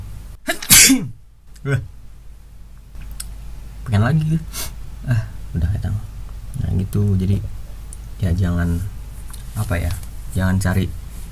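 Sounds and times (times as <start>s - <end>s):
loud sneeze: 0.5s - 1.2s
speech: 0.9s - 2.0s, 3.9s - 6.1s, 6.8s - 7.6s, 8.2s - 9.0s, 9.6s - 11.0s
small breathy sniff: 4.5s - 4.8s.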